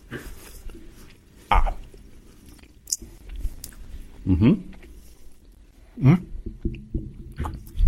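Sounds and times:
person chewing a firm raspberry-orange flavoured sweet: 0.0 - 5.6.

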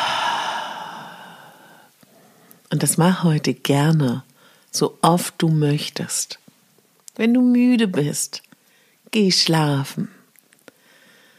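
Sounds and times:
slow soft exhalation through the mouth during a guided breathing exercise: 0.0 - 2.5
speech: 2.7 - 6.4, 7.2 - 8.4, 9.1 - 10.2.

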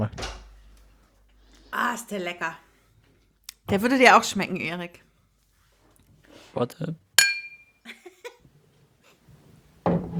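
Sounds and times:
soft knocks: 0.0 - 1.7
speech: 1.9 - 2.7, 3.7 - 5.1, 6.6 - 7.0
cup and glass clinking together: 7.2 - 7.8.

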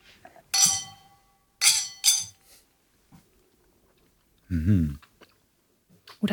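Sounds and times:
glasses of alcoholic cold-brew coffee drink clinking in a toast: 0.5 - 2.4
brief low vocal murmur: 4.5 - 5.0.

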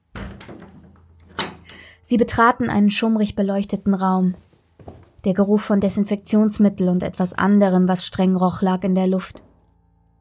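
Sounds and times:
door swinging open with creaking rattle: 0.1 - 1.8
speech: 2.0 - 4.4, 5.2 - 9.5.

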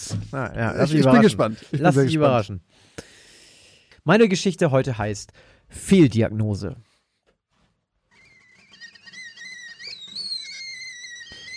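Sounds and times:
speech: 0.1 - 3.1, 4.0 - 6.9
tea kettle whistling: 8.2 - 11.5.

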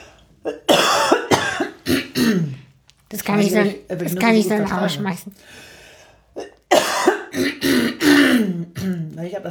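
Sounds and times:
person coughing after eating nuts: 0.4 - 2.7, 6.4 - 9.2
speech: 3.2 - 5.7, 9.2 - 9.4.

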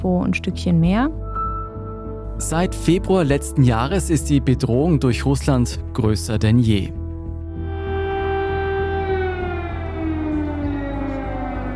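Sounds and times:
speech: 0.0 - 1.2, 2.4 - 7.0
air raid siren wailing: 7.4 - 11.7.

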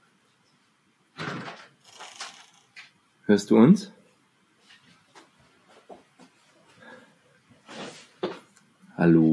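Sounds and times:
door pushed shut with a loud sharp thud: 1.2 - 2.4
speech: 3.3 - 4.0, 9.0 - 9.3.

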